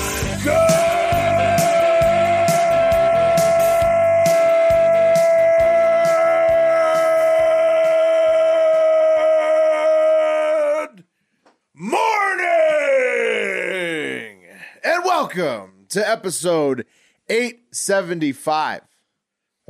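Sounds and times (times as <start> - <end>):
elongated yell: 0.2 - 11.1, 11.8 - 15.4
speech: 15.9 - 18.9.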